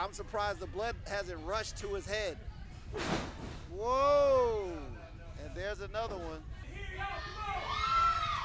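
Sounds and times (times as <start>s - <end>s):
speech: 0.0s - 7.7s
higher shouts rising out of the crowd: 6.9s - 8.4s
crowd cheering and yelling at a heavyweight championship fight: 7.0s - 8.4s.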